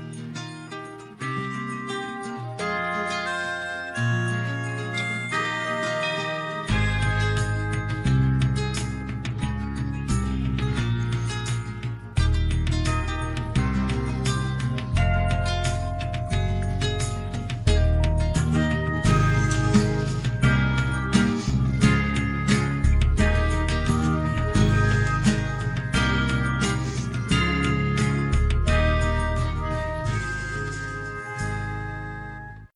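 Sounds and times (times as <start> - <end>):
Christmas commercial music: 1.2 - 32.7.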